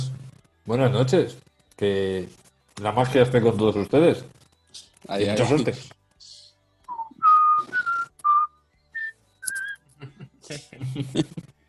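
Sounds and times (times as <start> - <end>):
speech: 0.7 - 4.4, 5.1 - 6.0, 10.5 - 11.5
person whistling clear bright notes: 6.9 - 9.8
laughter: 10.0 - 11.5.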